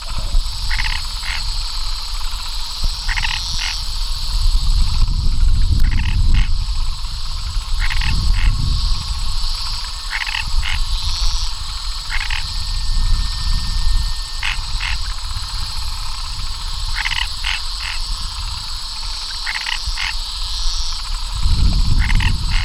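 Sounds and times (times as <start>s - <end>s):
Hypsiboas rubrolineatus frog calling: 0.0s - 22.6s.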